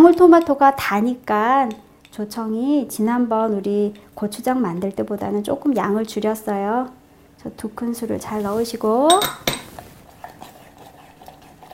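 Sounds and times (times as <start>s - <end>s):
spoon stirring cherry tomato sauce with grain syrup in a pot: 0.0s - 2.4s, 9.8s - 11.7s
speech: 0.0s - 9.5s.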